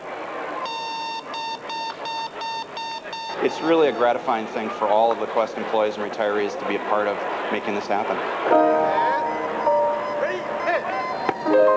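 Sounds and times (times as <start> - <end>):
electronic beeping from a speaker inside a beep baseball: 0.6 - 3.4, 8.5 - 11.7
speech: 3.4 - 9.0.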